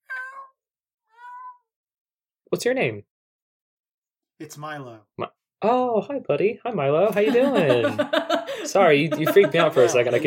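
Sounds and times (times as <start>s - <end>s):
cat meowing at the end of a shelf: 0.0s - 1.7s
speech: 2.5s - 3.1s, 4.4s - 10.2s
laughter: 7.1s - 10.2s.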